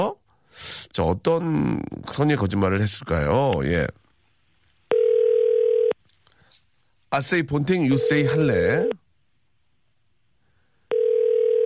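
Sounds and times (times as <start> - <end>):
speech: 0.0 - 4.0, 7.1 - 9.0
faint noise: 0.0 - 11.6
telephone ringing tone while placing a call: 4.9 - 6.0, 7.9 - 9.0, 10.9 - 11.6.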